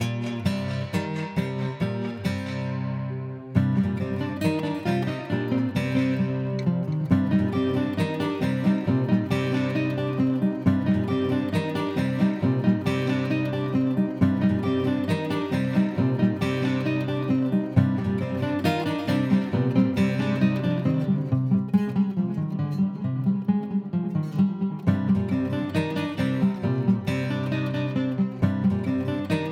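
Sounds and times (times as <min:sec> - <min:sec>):
guitar with recirculating delay effect: 0:00.0 - 0:29.5.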